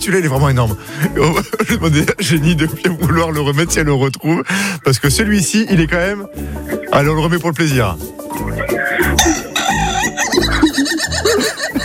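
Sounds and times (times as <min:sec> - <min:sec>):
steady thumping rhythmic backing: 0:00.0 - 0:04.0, 0:05.1 - 0:11.8
speech: 0:00.0 - 0:09.3
laughter: 0:01.0 - 0:02.6, 0:08.4 - 0:11.8
rooster crowing sound effect on the radio: 0:09.2 - 0:11.0.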